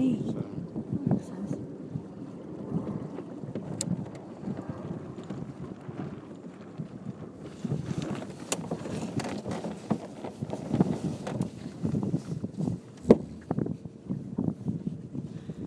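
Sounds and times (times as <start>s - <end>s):
wind buffeting a microphone aboard a moving boat: 0.0s - 15.6s
clatter aboard a moving boat: 3.5s - 13.7s.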